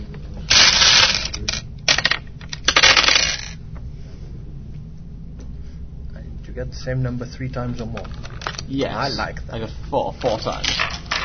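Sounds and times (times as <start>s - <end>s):
dice being rolled: 0.5s - 3.6s, 10.6s - 11.2s
speech: 6.6s - 11.0s.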